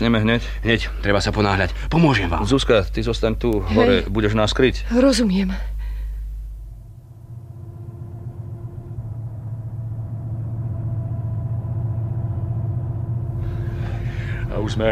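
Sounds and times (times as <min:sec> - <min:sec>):
speech: 0:00.0 - 0:05.7, 0:14.7 - 0:14.8
distant car engines rumbling: 0:06.8 - 0:14.8.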